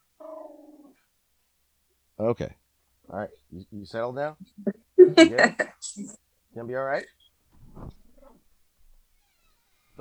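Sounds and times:
puppy whiny growl: 0.2 - 1.0
speech: 2.2 - 7.2.

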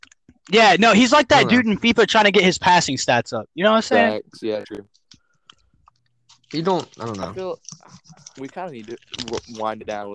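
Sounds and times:
speech: 0.5 - 5.0, 6.5 - 10.1
person talking loudly: 1.1 - 1.7, 3.9 - 4.2
person munching: 5.5 - 9.6.

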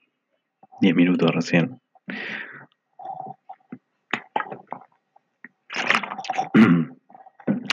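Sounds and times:
speech: 0.8 - 2.5
person slurping a sip of water: 3.0 - 4.9, 5.7 - 7.7
person gulping and swallowing water: 3.0 - 7.7.

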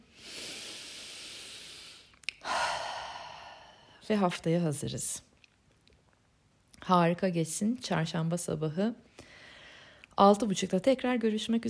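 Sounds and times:
deep breath in and out: 0.0 - 4.0, 9.2 - 10.1
speech: 4.1 - 5.3, 6.9 - 9.1, 10.2 - 11.6.

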